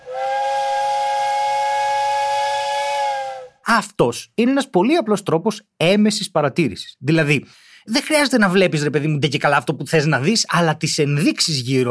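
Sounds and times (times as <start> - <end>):
train whistle blast: 0.0 - 3.6
speech: 3.7 - 11.8.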